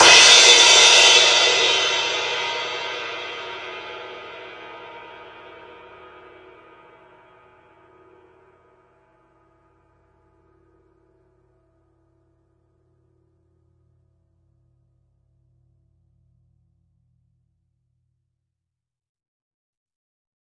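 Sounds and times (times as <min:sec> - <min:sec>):
long real crash cymbal single hit: 0:00.0 - 0:07.9.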